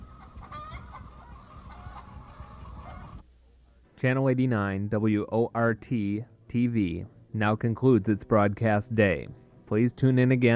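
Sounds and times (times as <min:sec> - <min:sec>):
several chickens clucking in a coop: 0:00.0 - 0:03.2
speech: 0:04.0 - 0:10.5.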